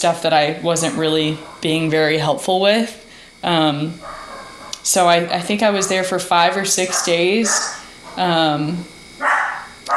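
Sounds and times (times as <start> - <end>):
speech: 0.0 - 4.2, 4.8 - 8.9
dog barking: 4.0 - 4.8, 6.8 - 7.8, 9.2 - 9.9.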